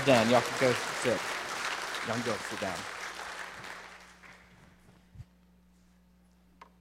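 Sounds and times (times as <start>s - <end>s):
speech: 0.0s - 1.4s, 2.0s - 3.0s
faint scattered applause from a small audience: 0.0s - 4.6s.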